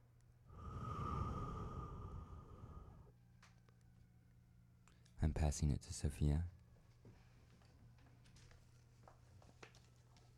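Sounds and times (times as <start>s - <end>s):
long steady breath blown into a balloon: 0.5s - 3.1s
speech: 5.2s - 6.6s.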